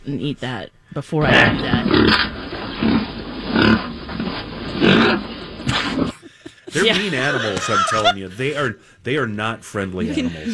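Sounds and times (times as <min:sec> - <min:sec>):
speech: 0:00.0 - 0:03.0, 0:06.8 - 0:10.5
faint noise: 0:00.0 - 0:10.5
pig grunting and snorting: 0:01.2 - 0:06.3
laughter: 0:04.6 - 0:08.8.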